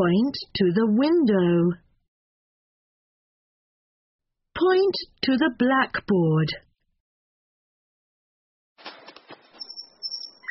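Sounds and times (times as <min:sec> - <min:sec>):
speech: 0:00.0 - 0:01.8, 0:04.6 - 0:06.7
bird chirping in busy bursts of twittering: 0:09.5 - 0:10.4.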